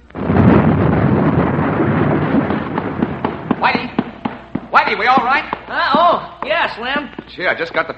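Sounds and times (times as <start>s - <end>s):
heavy explosion on the waterfront with dense low rumble: 0.0s - 5.6s
speech: 4.8s - 7.9s.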